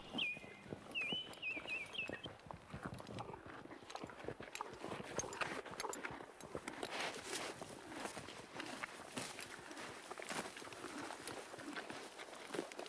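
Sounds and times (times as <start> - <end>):
bird chirping: 0.0 - 2.3
horse hooves clip-clopping as a horse pulls a wagon: 0.0 - 12.8.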